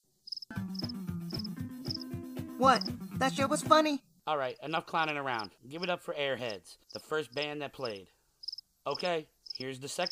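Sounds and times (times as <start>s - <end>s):
cricket chirping: 0.2s - 2.0s, 6.9s - 10.1s
speech: 2.6s - 8.2s, 8.8s - 10.1s.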